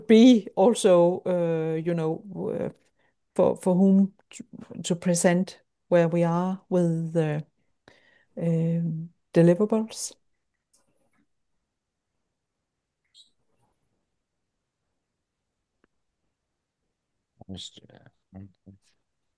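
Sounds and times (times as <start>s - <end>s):
speech: 0.1s - 2.8s, 3.4s - 7.5s, 8.4s - 10.2s, 17.5s - 18.8s
pet bird squawking and chirping excitedly: 13.0s - 13.5s.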